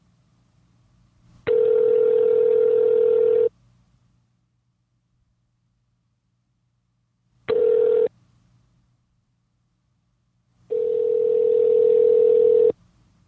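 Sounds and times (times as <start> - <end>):
faint low hum: 0.0 - 13.2
telephone ringback tone: 1.5 - 3.5, 7.5 - 8.1, 10.7 - 12.7.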